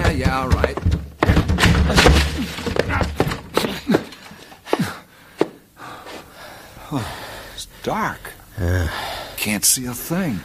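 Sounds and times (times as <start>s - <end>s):
people shouldering a stuck door, heavy dull thuds: 0.0s - 3.6s
scattered knocks as the forced door gives way: 0.0s - 4.1s
speech: 7.9s - 10.4s.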